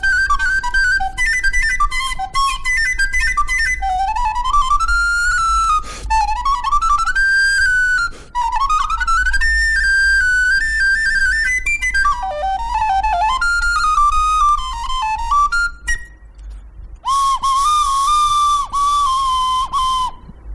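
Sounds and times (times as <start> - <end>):
cracked cheap plastic recorder playing a melody: 0.0 - 20.4.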